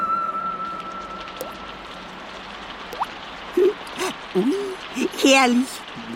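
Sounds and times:
soft steady hiss: 0.0s - 6.1s
raindrops pattering on a tin roof: 0.4s - 6.1s
speech: 4.4s - 5.8s.

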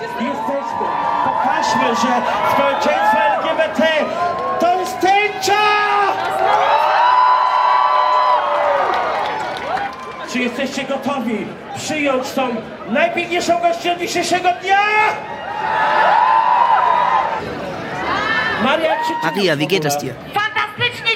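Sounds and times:
large crowd cheering and whooping at an LGBT equality parade: 0.0s - 10.5s, 15.2s - 19.7s
speech: 1.8s - 5.1s, 10.6s - 16.2s, 18.6s - 21.0s.

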